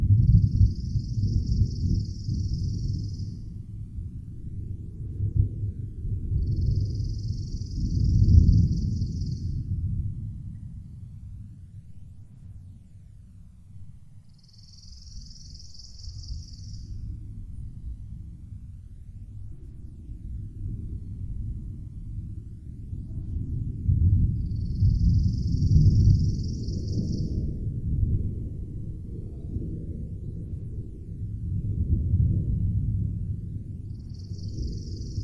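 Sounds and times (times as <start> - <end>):
distant summer thunder rolling low and deep: 0.0 - 10.8, 20.5 - 35.2.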